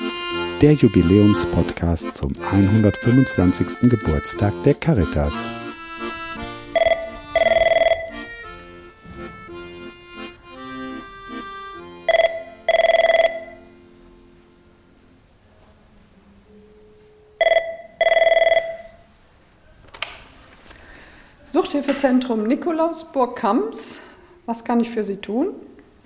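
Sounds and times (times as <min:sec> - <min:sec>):
soft tonal background: 0:00.0 - 0:19.1
speech: 0:00.6 - 0:05.6, 0:22.0 - 0:25.7
telephone ringing at an addiction help centre: 0:05.5 - 0:13.8, 0:16.9 - 0:19.1.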